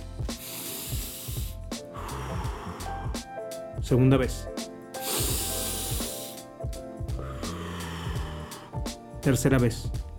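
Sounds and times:
soft rhythmic music: 0:00.0 - 0:10.1
deep breath in and out close to the microphone: 0:00.3 - 0:03.3, 0:05.0 - 0:06.5, 0:07.1 - 0:09.0
speech: 0:03.8 - 0:04.6, 0:09.2 - 0:10.0.

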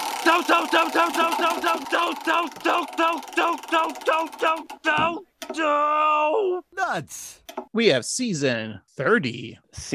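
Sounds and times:
prize wheel spinning and clicking: 0:00.0 - 0:05.6
speech: 0:00.3 - 0:09.9.

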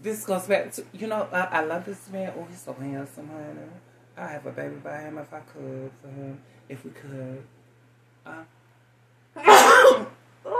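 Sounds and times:
speech: 0:00.0 - 0:07.6, 0:08.2 - 0:08.6
person with allergies sneezing: 0:09.4 - 0:10.5.

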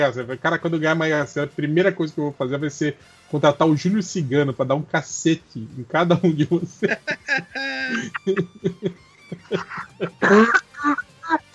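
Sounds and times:
speech: 0:00.0 - 0:11.0
laughter: 0:06.1 - 0:11.4
person coughing in short harsh bursts: 0:07.3 - 0:11.2.

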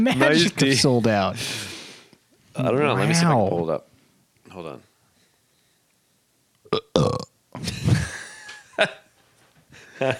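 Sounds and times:
speech: 0:00.0 - 0:01.7, 0:02.6 - 0:03.9, 0:04.5 - 0:04.9, 0:06.7 - 0:07.8, 0:08.8 - 0:09.0
loud drawn-out burp: 0:06.7 - 0:07.4.

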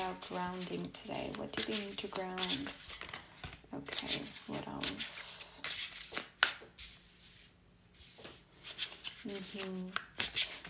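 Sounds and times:
deck of tarot cards being shuffled: 0:00.0 - 0:07.0, 0:08.0 - 0:10.6
speech: 0:00.2 - 0:03.1, 0:03.7 - 0:05.3, 0:09.2 - 0:10.1.

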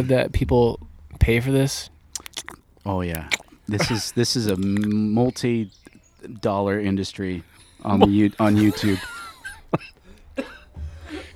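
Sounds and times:
low rumble of noise: 0:00.0 - 0:02.2, 0:07.4 - 0:11.3
speech: 0:00.0 - 0:10.5
laughter: 0:03.0 - 0:11.3
man coughing during a Zoom video call: 0:03.4 - 0:05.3, 0:07.4 - 0:11.3.

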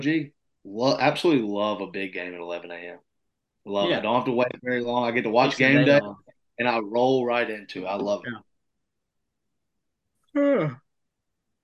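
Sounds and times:
speech: 0:00.0 - 0:08.5, 0:10.4 - 0:10.8
voiced yawn: 0:10.3 - 0:10.9.

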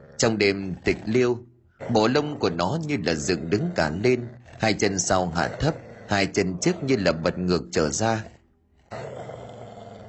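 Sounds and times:
dog growling at a rocky mound of earth at night: 0:00.0 - 0:10.0
speech: 0:00.2 - 0:09.1.

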